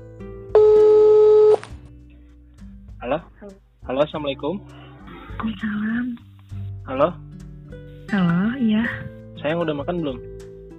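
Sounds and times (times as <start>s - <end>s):
phone ringback tone: 0.6s - 1.7s
speech: 3.0s - 6.3s, 6.9s - 7.2s, 8.1s - 10.3s.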